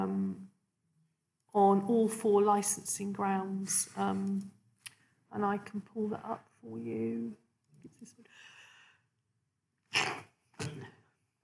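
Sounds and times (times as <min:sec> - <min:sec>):
speech: 0:01.6 - 0:04.6, 0:05.3 - 0:08.5
person sneezing: 0:09.9 - 0:10.9.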